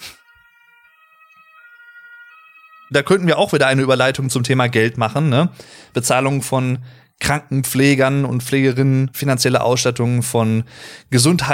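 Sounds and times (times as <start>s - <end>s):
ambulance siren wailing: 0.0s - 6.1s
speech: 2.9s - 11.5s.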